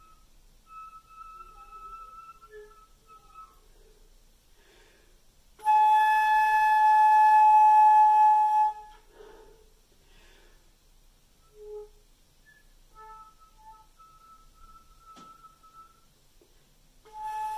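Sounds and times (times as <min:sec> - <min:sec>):
thin soft whistle tones: 0:00.0 - 0:03.9, 0:05.6 - 0:09.1, 0:11.4 - 0:16.2, 0:17.1 - 0:17.5.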